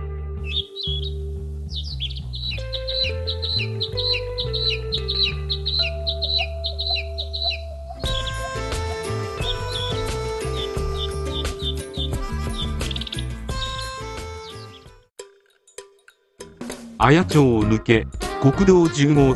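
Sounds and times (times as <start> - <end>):
low sustained tones swelling into fuller music: 0.0 - 14.9
birds chirping in an evergreen forest valley: 0.4 - 15.1
speech: 17.0 - 19.3.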